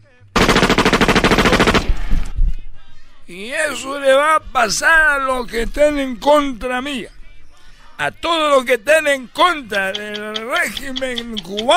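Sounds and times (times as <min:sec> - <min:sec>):
firing-squad automatic gunfire burst in a mock execution: 0:00.4 - 0:02.1
speech: 0:03.3 - 0:07.2, 0:08.0 - 0:11.7.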